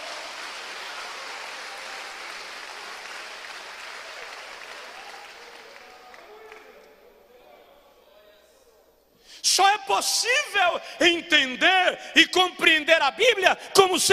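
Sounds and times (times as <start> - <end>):
large congregation applauding: 0.0 - 6.8
speech: 9.5 - 14.1.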